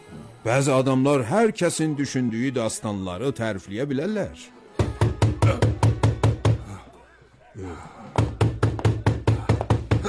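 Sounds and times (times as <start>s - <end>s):
speech: 0.4s - 4.6s
rapid insistent knocking on a door: 4.8s - 6.6s, 8.2s - 10.0s.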